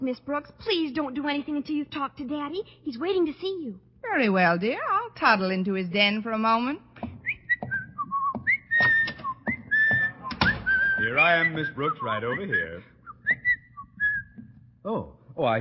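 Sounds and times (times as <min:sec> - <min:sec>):
speech: 0:00.0 - 0:06.9, 0:11.2 - 0:12.9, 0:14.8 - 0:15.5
faint noise: 0:00.0 - 0:15.5
person whistling a tune: 0:07.2 - 0:14.4.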